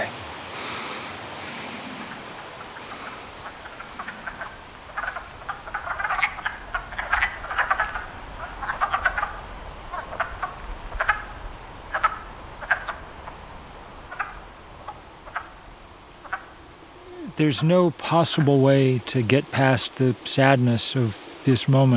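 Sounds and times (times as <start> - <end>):
chorus of wood frogs croaking: 0.0 - 18.9
speech: 17.4 - 21.9.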